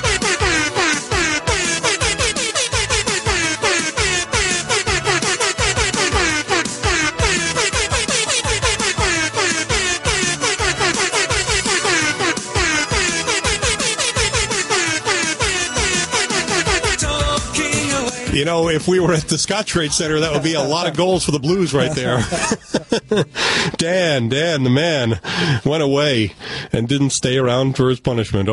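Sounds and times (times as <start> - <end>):
air horn blasts playing a synth-pop melody: 0.0 - 17.4
speech: 18.4 - 28.5
laughter: 20.1 - 23.4.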